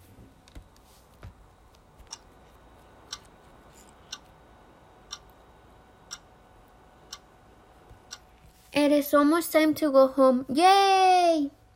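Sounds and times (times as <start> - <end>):
classroom clock ticking: 2.1 - 2.3, 4.1 - 4.4, 5.0 - 5.4, 6.0 - 6.3, 7.0 - 7.3, 8.0 - 8.3
speech: 8.9 - 11.6.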